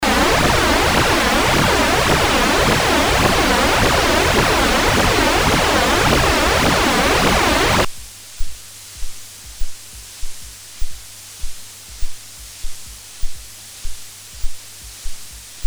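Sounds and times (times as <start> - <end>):
Roland JU06 and Roland Juno106 synthesizer chorus noise: 0.0 - 7.9.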